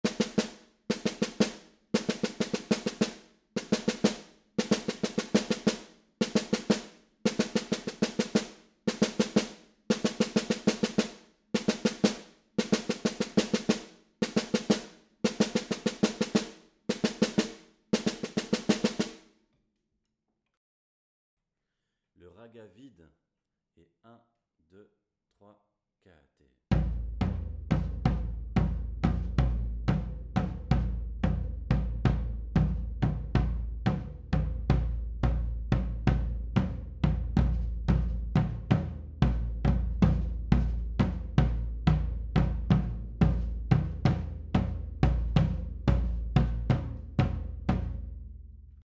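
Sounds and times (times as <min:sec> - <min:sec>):
batucada drumming: 0:00.0 - 0:19.1, 0:26.7 - 0:48.0
ragga bass: 0:26.7 - 0:48.8.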